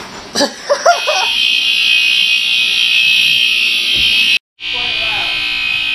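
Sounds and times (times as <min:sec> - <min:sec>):
laughter: 0:00.4 - 0:01.4
smoke detector alarm set off by smoke from a stove burner: 0:00.7 - 0:05.9.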